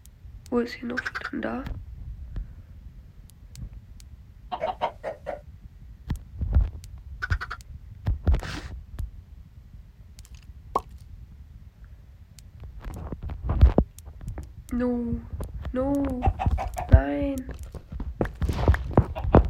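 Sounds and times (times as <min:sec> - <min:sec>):
low steady rumble: 0:00.0 - 0:19.4
speech: 0:00.5 - 0:01.8, 0:14.8 - 0:16.3
video game chickens clucking: 0:00.8 - 0:01.6, 0:04.5 - 0:05.5, 0:07.2 - 0:07.6, 0:16.0 - 0:17.2, 0:19.0 - 0:19.4.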